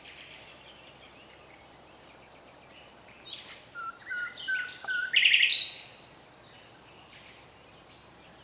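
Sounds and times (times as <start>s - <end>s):
common nightingale Luscinia megarhynchos song phrase: 0.0s - 8.4s.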